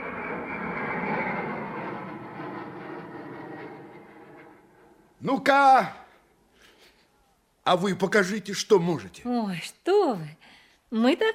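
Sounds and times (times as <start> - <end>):
airplane flying overhead: 0.0 - 5.2
speech: 5.2 - 6.0, 7.7 - 11.3.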